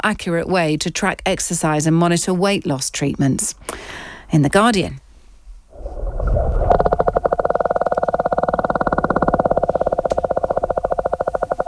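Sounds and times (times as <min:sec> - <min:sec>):
speech: 0:00.0 - 0:05.0
low murky rumble: 0:05.4 - 0:11.6
sperm whale clicks: 0:06.6 - 0:11.6.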